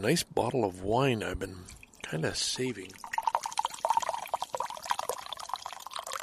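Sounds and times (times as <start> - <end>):
speech: 0.0 - 3.1
liquid pouring from a Zojirushi thermos: 1.6 - 6.2.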